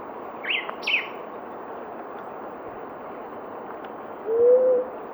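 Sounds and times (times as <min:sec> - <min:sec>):
sharp high chirp from another bird: 0:00.4 - 0:01.2
blue-headed quail-dove cooing: 0:04.3 - 0:04.9.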